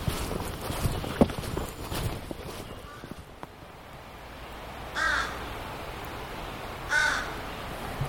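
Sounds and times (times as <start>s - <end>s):
faint footsteps: 0.0s - 3.6s
outdoor rustling: 0.0s - 8.0s
crows cawing in treetops: 2.8s - 3.2s, 4.9s - 5.4s, 6.9s - 7.4s.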